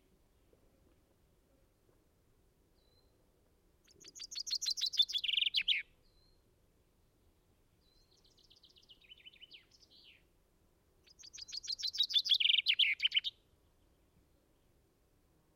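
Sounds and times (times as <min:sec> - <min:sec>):
common chaffinch Fringilla coelebs singing falling trill with end flourish: 0:03.8 - 0:15.0
common chaffinch Fringilla coelebs giving soft twittering phrase: 0:03.9 - 0:06.4, 0:07.8 - 0:10.2, 0:11.0 - 0:13.9.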